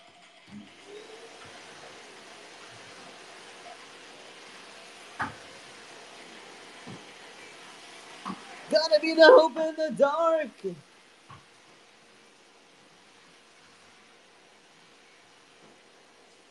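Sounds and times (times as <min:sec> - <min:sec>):
vacuum cleaner running: 0:00.5 - 0:09.8
speech: 0:08.3 - 0:10.9.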